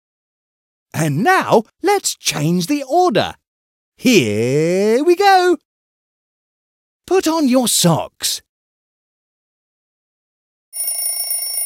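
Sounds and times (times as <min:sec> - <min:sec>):
speech: 0:01.0 - 0:03.4, 0:04.0 - 0:05.7, 0:07.1 - 0:08.5
bright continuous electronic alarm clock bell ringing: 0:10.7 - 0:11.6.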